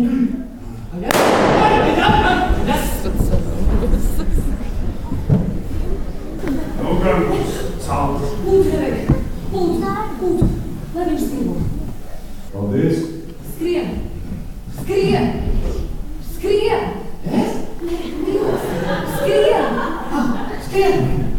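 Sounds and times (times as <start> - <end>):
voices talking and reacting in a large room: 1.0 - 21.3
loud sharp stage gunshot: 1.1 - 2.5
laughter: 1.1 - 9.4, 17.8 - 21.3.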